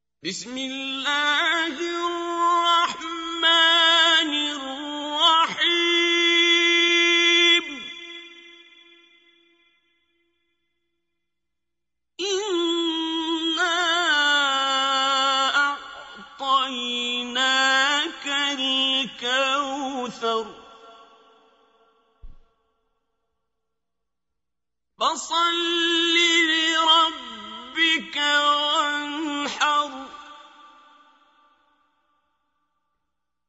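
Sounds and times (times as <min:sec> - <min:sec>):
quran recitation: 0:00.2 - 0:09.8, 0:12.2 - 0:22.4, 0:25.0 - 0:31.9.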